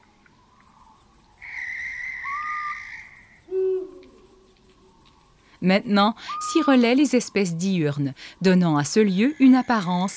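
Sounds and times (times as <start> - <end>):
insects chirping in a rhythmic pulse: 0.0 - 10.1
owl hooting at night in a bare leafless wood: 1.4 - 4.4, 6.2 - 7.1
speech: 5.6 - 10.1.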